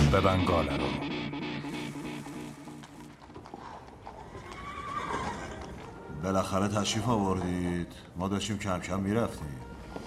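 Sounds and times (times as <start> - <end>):
speech: 0.2 - 1.2, 6.2 - 10.0
horse neighing: 1.6 - 6.1
horse hooves clip-clopping: 1.9 - 8.4.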